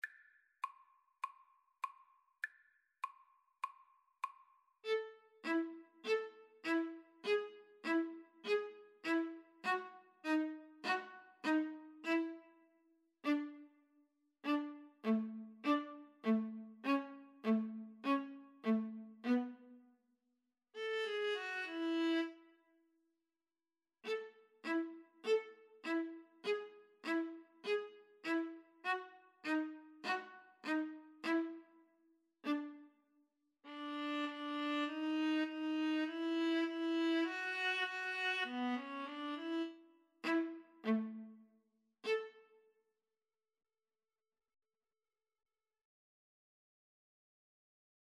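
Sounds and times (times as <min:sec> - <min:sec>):
violin and viola duet playing a rag: 0:04.8 - 0:12.5, 0:13.2 - 0:13.7, 0:14.4 - 0:19.7, 0:20.8 - 0:22.4, 0:24.1 - 0:31.8, 0:32.4 - 0:32.8, 0:33.7 - 0:41.4, 0:42.0 - 0:42.5.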